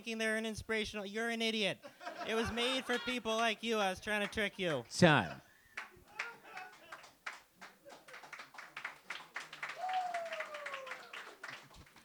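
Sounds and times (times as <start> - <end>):
speech: 0.0 - 5.5
laughter: 1.8 - 5.4, 6.1 - 7.1
crowd clapping: 5.8 - 12.0.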